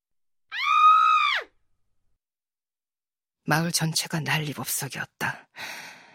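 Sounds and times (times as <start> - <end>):
shrill high-pitched scream: 0.5 - 1.6
speech: 3.5 - 5.9.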